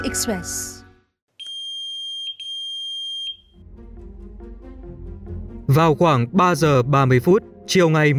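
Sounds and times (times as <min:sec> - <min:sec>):
speech: 0:00.1 - 0:00.8, 0:05.8 - 0:08.1
pager beeping as it receives a message: 0:01.4 - 0:03.5.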